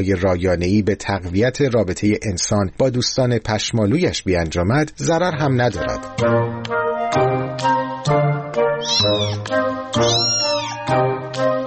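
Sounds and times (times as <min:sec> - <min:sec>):
speech: 0:00.0 - 0:11.1
cat meowing: 0:08.8 - 0:10.9.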